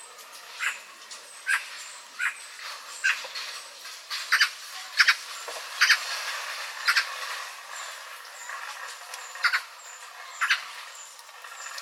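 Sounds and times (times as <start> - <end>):
Eurasian magpie Pica pica scratchy grating calls: 1.5 - 2.4, 4.3 - 6.1, 6.7 - 7.4, 8.4 - 11.8.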